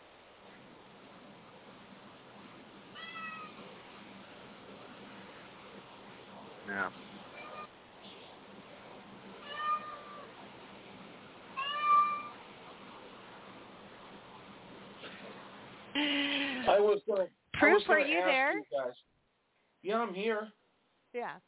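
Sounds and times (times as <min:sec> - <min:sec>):
cat meowing: 0:02.9 - 0:03.6, 0:09.4 - 0:10.3, 0:11.6 - 0:12.4
speech: 0:06.7 - 0:07.0, 0:16.0 - 0:19.1, 0:19.8 - 0:20.6, 0:21.2 - 0:21.4.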